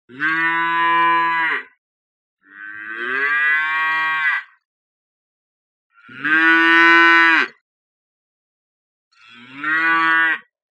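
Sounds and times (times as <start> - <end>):
baby calf calling: 0.1 - 1.7, 2.4 - 4.6, 6.0 - 7.6, 9.2 - 10.5.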